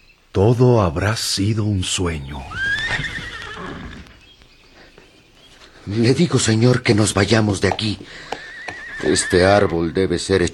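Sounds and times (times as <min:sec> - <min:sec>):
speech: 0:00.4 - 0:03.1, 0:05.9 - 0:08.4, 0:09.0 - 0:10.5
horse neighing: 0:02.2 - 0:04.4, 0:06.9 - 0:10.5
faint hoof shuffle: 0:02.2 - 0:10.5.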